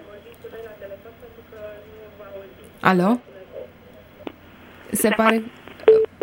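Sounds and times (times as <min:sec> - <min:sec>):
telephone line crackle after a dropped radio phone-in call: 0:00.0 - 0:02.8, 0:03.6 - 0:06.2
speech: 0:00.5 - 0:03.4, 0:04.9 - 0:05.6
short loud steady telephone line beeps: 0:05.8 - 0:06.2.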